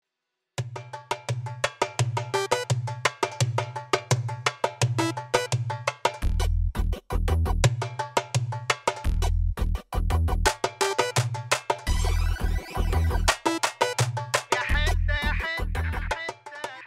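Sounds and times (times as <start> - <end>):
loud percussion groove with sharp hits: 0.6 - 16.8
pulsing bass line: 6.2 - 7.7, 9.1 - 10.5, 11.9 - 13.5, 14.7 - 16.1
bright tonal accents: 11.9 - 14.0.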